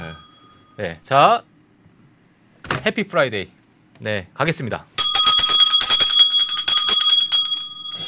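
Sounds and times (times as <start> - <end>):
speech: 0.8 - 1.5, 2.8 - 4.9
market opening bell ringing rapidly: 5.0 - 8.0.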